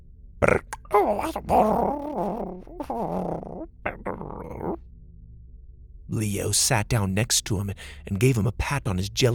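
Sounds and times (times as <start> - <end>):
small creature whimpering: 0.4 - 4.8
speech: 0.4 - 4.8, 6.1 - 9.3
throaty grunting: 0.4 - 4.8.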